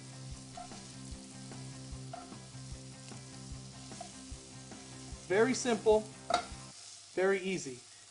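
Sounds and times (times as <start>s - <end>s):
prawns sizzling in a frying pan: 0.0s - 8.0s
speech: 5.3s - 6.4s, 7.2s - 8.0s.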